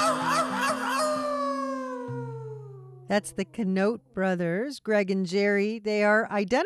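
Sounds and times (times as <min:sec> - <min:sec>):
voice in a song imitating a coyote howling at the moon: 0:00.0 - 0:03.1
speech: 0:03.1 - 0:06.6.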